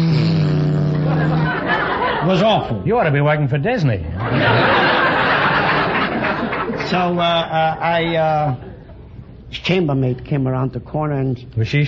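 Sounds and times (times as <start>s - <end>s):
voice imitating a flying buzz bomb engine: 0.0s - 1.7s
laughter: 0.8s - 2.6s, 4.2s - 9.0s
speech: 2.2s - 4.8s, 6.9s - 8.7s, 9.6s - 11.8s.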